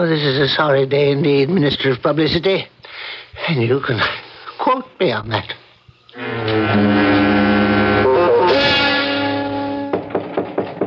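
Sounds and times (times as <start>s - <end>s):
speech: 0.0s - 2.7s, 3.4s - 5.6s, 6.2s - 7.3s
loud droning musical chord: 6.2s - 10.2s
sharp evenly spaced knocks on a door: 9.9s - 10.8s.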